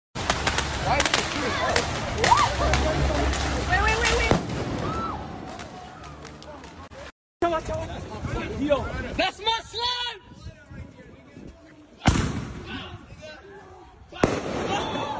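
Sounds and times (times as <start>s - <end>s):
fireworks crackling and popping on a street: 0.2s - 7.8s, 14.2s - 15.1s
speech: 0.9s - 4.3s, 7.4s - 10.2s
youths shouting: 1.1s - 6.4s, 12.6s - 15.1s
whistling rockets: 3.9s - 6.1s, 14.2s - 15.1s.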